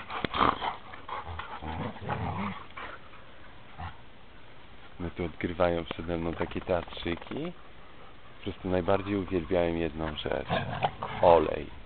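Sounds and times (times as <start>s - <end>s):
dogs growling: 0.0s - 3.1s, 7.5s - 11.8s
speech: 5.2s - 7.7s, 8.4s - 11.8s.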